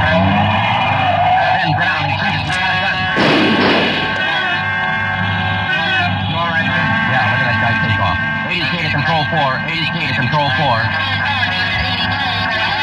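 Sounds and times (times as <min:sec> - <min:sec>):
gray Ford convertible skidding: 0:00.0 - 0:09.4
gray Ford convertible engine and road noise, driving without lights: 0:00.0 - 0:12.8
people talking: 0:01.4 - 0:04.8, 0:05.6 - 0:12.8.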